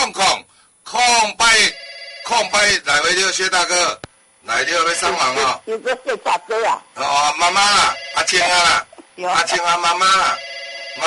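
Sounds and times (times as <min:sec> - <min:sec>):
telephone ringing: 0:01.4 - 0:03.4, 0:04.5 - 0:05.6, 0:07.0 - 0:11.0
speech: 0:02.4 - 0:11.0.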